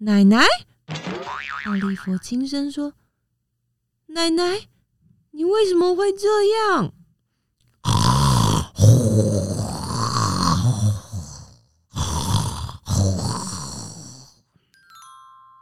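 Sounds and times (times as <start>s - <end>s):
speech: 0.0s - 3.0s, 4.1s - 4.7s, 5.3s - 7.0s
grandmother snoring loudly and raspingly: 7.8s - 14.4s.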